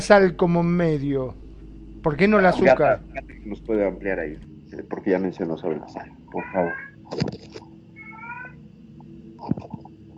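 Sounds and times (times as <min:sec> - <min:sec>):
speech: 0:00.0 - 0:01.4, 0:02.0 - 0:07.6
low steady hum: 0:00.0 - 0:10.1
cat meowing: 0:06.3 - 0:07.0, 0:08.0 - 0:08.6.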